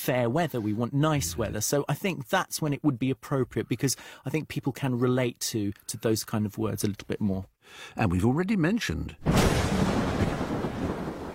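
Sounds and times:
speech: 0.0s - 10.0s
loud thunder rumble with sharp crack: 9.2s - 11.3s.

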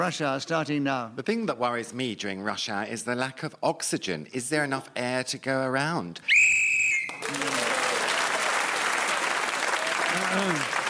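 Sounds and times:
speech: 0.0s - 6.5s, 7.3s - 7.5s, 10.3s - 10.8s
shrill whistle blast to end a round: 6.3s - 7.2s
audience applause: 7.0s - 10.8s.

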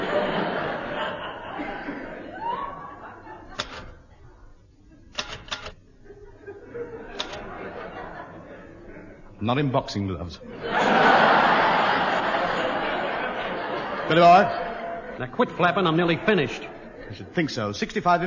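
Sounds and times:
laughter: 0.0s - 5.1s, 5.9s - 9.7s, 10.4s - 18.2s
low noise: 0.0s - 18.2s
gloved fingers typing on keys: 3.6s - 4.1s, 5.1s - 5.8s, 7.1s - 7.5s
speech: 9.4s - 10.8s, 14.1s - 18.2s.

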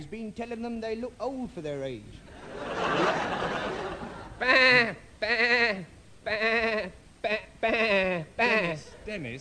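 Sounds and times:
speech: 0.0s - 3.6s, 4.4s - 9.4s
laughter: 2.3s - 4.7s
man's voice imitating sheep bleats: 4.4s - 8.9s.

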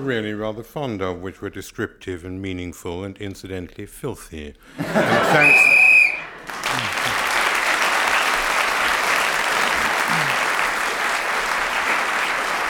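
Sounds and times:
speech: 0.0s - 5.8s
laughter: 4.7s - 7.4s
loud sustained audience applause: 5.3s - 12.6s
shrill whistle blast marking the end of a game round: 5.4s - 6.3s.

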